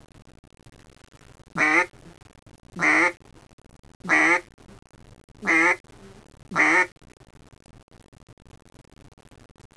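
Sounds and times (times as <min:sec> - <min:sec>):
basic duck quack: 0:01.6 - 0:01.9, 0:02.8 - 0:03.2, 0:04.0 - 0:04.5, 0:05.4 - 0:05.8, 0:06.5 - 0:06.9.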